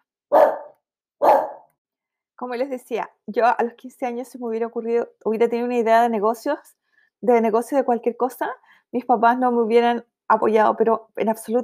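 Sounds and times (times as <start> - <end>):
dogs barking: 0.3 - 1.7
speech: 2.4 - 11.6.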